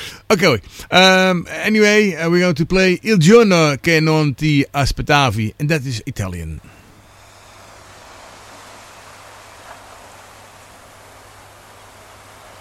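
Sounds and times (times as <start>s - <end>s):
speech: 0.3s - 6.7s
ocean waves at the shore: 6.8s - 12.6s.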